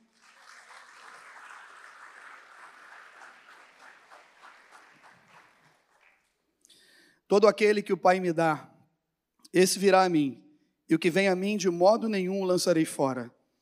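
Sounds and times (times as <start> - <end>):
congregation applauding: 0.0 - 6.5
speech: 7.3 - 8.7, 9.5 - 13.4.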